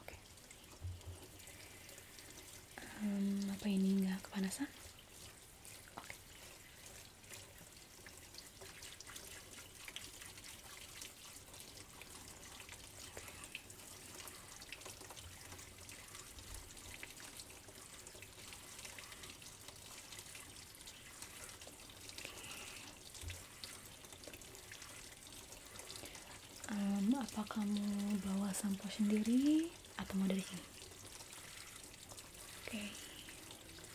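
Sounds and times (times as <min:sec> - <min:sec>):
water running from a tap into a basin during hair washing: 0:00.1 - 0:33.9.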